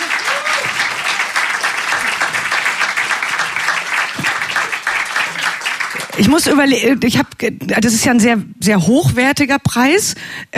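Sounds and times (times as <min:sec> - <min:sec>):
audience applauding a record critics' prize: 0:00.0 - 0:06.6
speech: 0:06.2 - 0:10.5.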